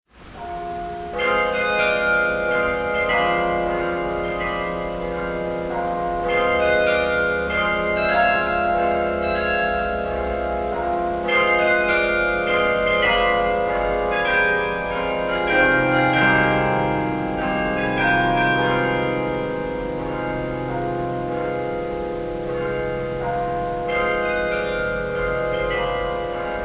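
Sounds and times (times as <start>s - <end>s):
carillon concert: 0.4s - 26.6s.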